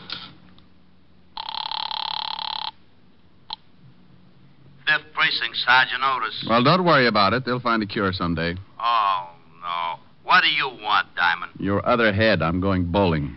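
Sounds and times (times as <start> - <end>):
telephone ringing: 1.4 - 2.8
speech: 5.3 - 9.0, 10.4 - 13.3.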